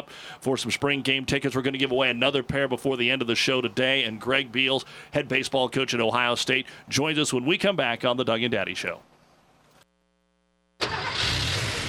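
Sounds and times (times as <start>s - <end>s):
speech: 0.1s - 9.1s
car engine starting and running on motor oil: 10.8s - 11.8s.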